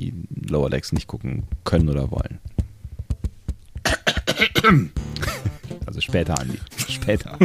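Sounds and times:
speech: 0.5s - 2.5s, 4.6s - 5.0s, 6.0s - 7.4s
throat-clearing noises with voiced groaning tones: 3.8s - 5.4s
person coughing: 3.8s - 5.5s
laughter: 6.4s - 7.4s.

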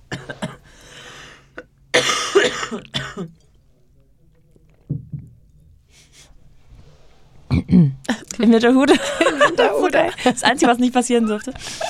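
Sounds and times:
person coughing harsh raspy coughs: 0.1s - 0.7s, 1.6s - 3.3s
speech: 2.7s - 3.4s, 8.4s - 11.8s
laughter: 8.8s - 10.8s.

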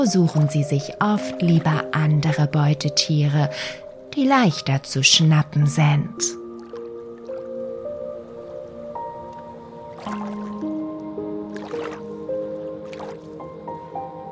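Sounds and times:
capybara slipping into water with soft wet plops and splashes: 0.0s - 2.4s, 6.3s - 7.8s, 9.0s - 13.5s
speech: 0.0s - 6.4s
gentle steady melodic music bed: 0.0s - 14.2s.

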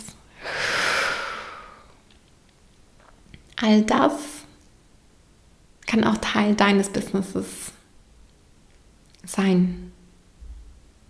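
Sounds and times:
long deep breathy exhale close to the microphone: 0.4s - 1.9s
speech: 3.6s - 4.4s, 6.0s - 7.8s, 9.3s - 10.0s.

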